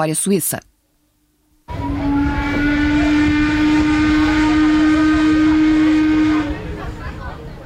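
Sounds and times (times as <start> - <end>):
speech: 0.0 - 0.7
boat horn calling passengers to board at a pier on Lake Lucerne in Switzerland: 1.7 - 7.2.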